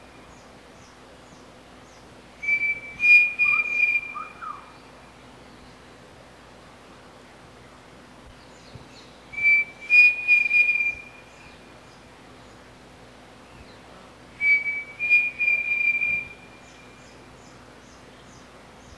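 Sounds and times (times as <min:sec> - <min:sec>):
pavonine cuckoo song: 0:02.4 - 0:04.9, 0:09.3 - 0:11.7, 0:14.4 - 0:17.2.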